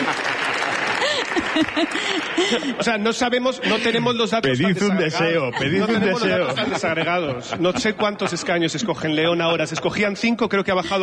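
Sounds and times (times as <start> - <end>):
crowd applause: 0.0 - 4.0
laughter: 0.0 - 9.5
speech: 1.6 - 11.0.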